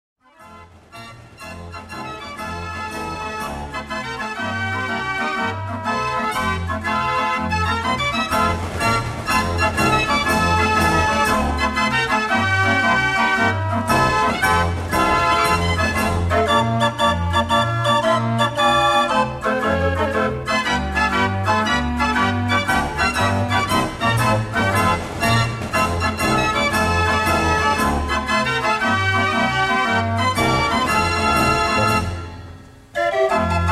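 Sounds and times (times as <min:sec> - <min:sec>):
barrel organ music: 0:00.3 - 0:33.7.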